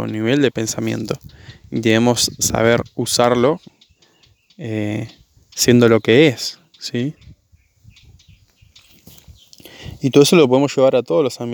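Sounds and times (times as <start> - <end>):
speech: 0.0 - 3.7, 4.6 - 7.2, 10.0 - 11.5
small bird chirping: 0.0 - 10.3.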